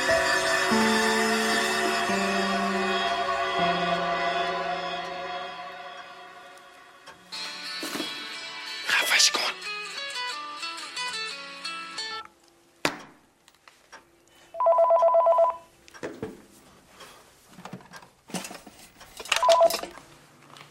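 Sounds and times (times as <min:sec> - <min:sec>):
musical tones: 0:00.0 - 0:08.8
telephone ringing: 0:14.6 - 0:15.7, 0:19.4 - 0:19.9.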